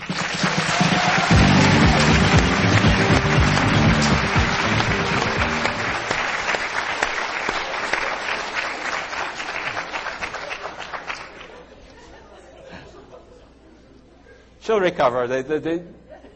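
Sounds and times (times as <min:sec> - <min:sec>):
audience applause: 0:00.0 - 0:11.7
low cheers or voices: 0:00.5 - 0:06.0
laughter: 0:11.4 - 0:14.4, 0:16.0 - 0:16.3
speech: 0:14.7 - 0:16.1.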